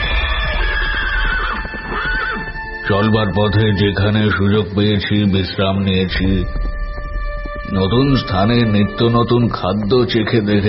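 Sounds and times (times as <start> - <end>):
horse whinnying loudly: 0.0 - 2.8
galloping hoofbeats of horses ridden hard across open country: 0.0 - 4.4, 5.0 - 10.6
speech: 2.9 - 6.7, 7.7 - 10.6.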